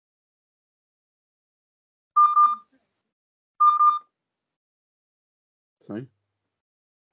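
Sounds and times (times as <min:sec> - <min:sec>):
smartphone find-my-phone ringtone beeping set off by Google Assistant: 0:02.2 - 0:02.7, 0:03.6 - 0:04.1
speech: 0:05.9 - 0:06.2.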